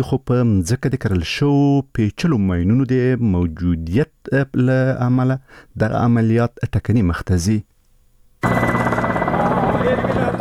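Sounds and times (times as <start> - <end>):
speech: 0.0 - 7.7
combat helicopters and military aircraft flying overhead in Marja district, Afghanistan: 8.4 - 10.4.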